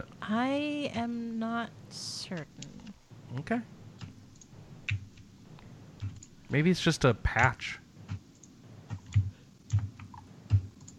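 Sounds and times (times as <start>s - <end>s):
speech: 0.0s - 2.7s, 3.3s - 3.8s, 6.5s - 7.8s
heavy hard strikes on a computer keyboard: 4.0s - 5.3s, 6.0s - 6.7s, 7.3s - 10.9s.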